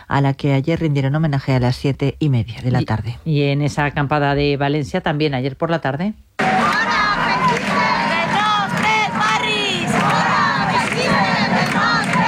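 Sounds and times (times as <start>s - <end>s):
speech: 0.1s - 6.3s
crowd of antifascist protesters shouting chants at a protest camp in Valencia: 6.4s - 12.2s.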